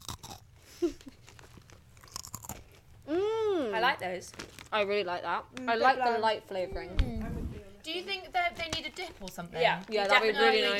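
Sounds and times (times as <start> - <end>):
crunching and chewing on thin pretzel crackers: 0.0 - 3.0, 4.3 - 4.8
speech: 3.8 - 7.2, 7.8 - 10.7.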